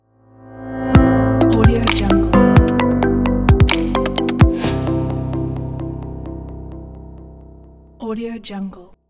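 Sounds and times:
digital piano logo: 0:00.9 - 0:07.2.

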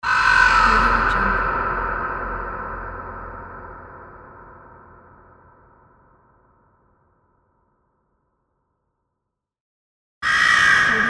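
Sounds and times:
horror crow cawing: 0:00.0 - 0:01.5, 0:10.2 - 0:11.0.

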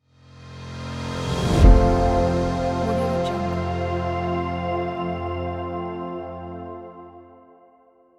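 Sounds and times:
intro sound: 0:01.2 - 0:07.3.

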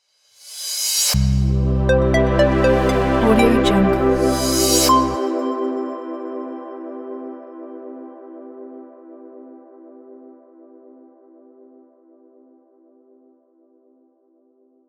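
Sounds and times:
tech corporate intro logo jingle: 0:01.9 - 0:05.4.

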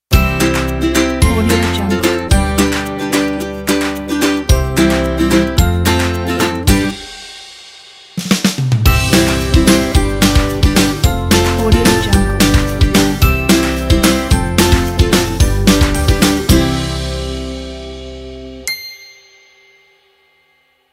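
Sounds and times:
ukulele ident: 0:00.1 - 0:07.3, 0:08.8 - 0:18.6.

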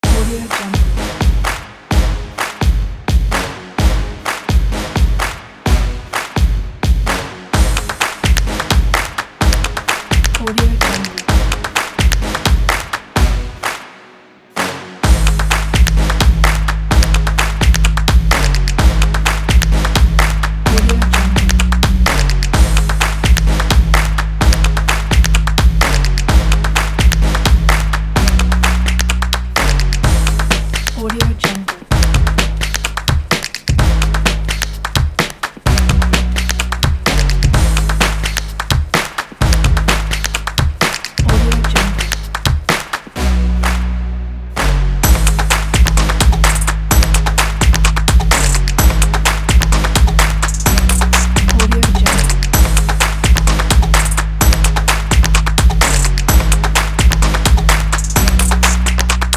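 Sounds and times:
upbeat drumming: 0:00.0 - 0:13.8, 0:15.0 - 0:43.8, 0:44.6 - 0:59.3.

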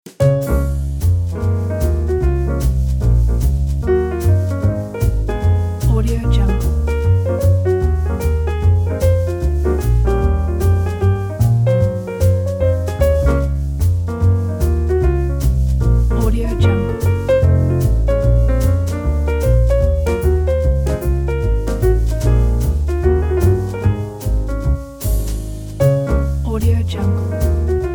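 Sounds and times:
luxury lounge jazz music: 0:00.0 - 0:27.9.

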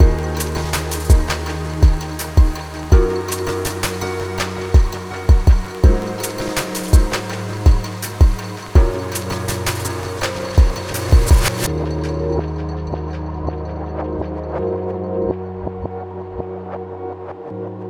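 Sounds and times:
ambient rain: 0:00.1 - 0:11.7.

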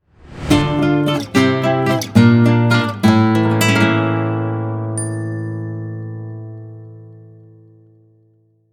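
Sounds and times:
Spanish guitar logo jingle: 0:00.4 - 0:08.6.

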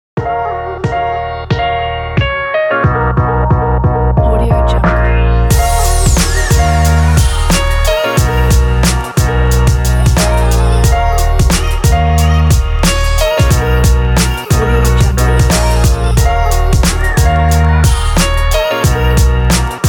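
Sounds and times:
upbeat boom bap hip hop beat: 0:00.2 - 0:19.8.

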